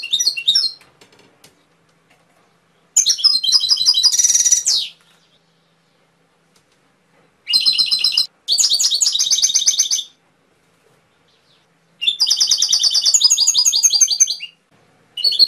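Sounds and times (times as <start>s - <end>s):
canary singing fast high rolling trills and buzzy rattles: 0.0s - 0.8s, 2.4s - 6.1s, 7.4s - 10.2s, 11.1s - 15.4s.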